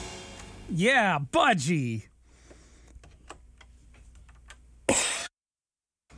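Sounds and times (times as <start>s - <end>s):
speech: 0.7s - 2.1s
throat clearing: 4.9s - 5.3s.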